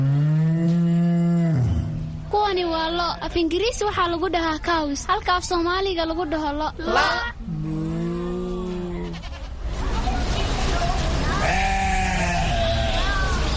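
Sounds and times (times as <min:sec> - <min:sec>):
steady noise: 0:00.0 - 0:13.5
speech: 0:03.1 - 0:07.3
sheep bleating: 0:11.4 - 0:13.2.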